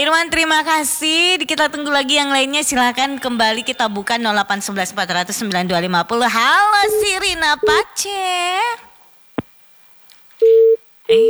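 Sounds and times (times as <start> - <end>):
speech: 0.0 - 8.9, 10.4 - 11.2
telephone busy tone after a caller's line cut off during a phone-in: 10.4 - 11.2.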